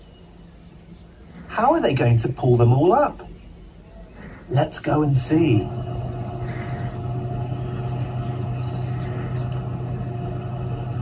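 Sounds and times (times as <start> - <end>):
speech: 1.6 - 3.3, 4.5 - 5.8
heavy diesel tractor engine droning while driving through field: 4.5 - 11.0
mechanical whir: 5.1 - 11.0.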